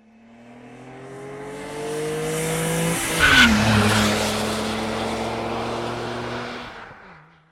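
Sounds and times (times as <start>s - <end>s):
racing truck engines roaring at a truck race: 0.7s - 7.1s
racing truck skidding with tire squeal: 3.0s - 4.4s.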